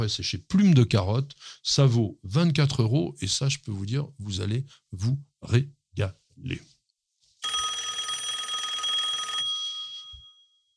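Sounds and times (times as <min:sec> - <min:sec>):
speech: 0:00.0 - 0:06.7
telephone bell ringing: 0:07.4 - 0:10.7.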